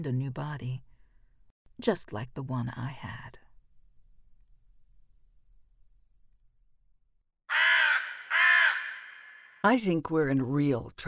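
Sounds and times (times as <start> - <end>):
speech: 0.0 - 0.9, 1.8 - 3.4, 9.6 - 11.0
crows cawing: 7.5 - 9.6.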